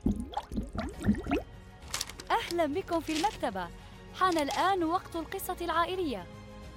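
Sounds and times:
bubbles blown underwater: 0.0 - 1.4
speech: 2.6 - 6.4.

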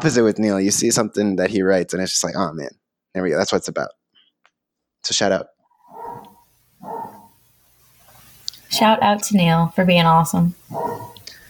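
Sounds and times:
speech: 0.0 - 4.0, 5.0 - 5.6, 8.7 - 11.2
dog barks in the background: 5.9 - 7.4, 10.7 - 11.2.

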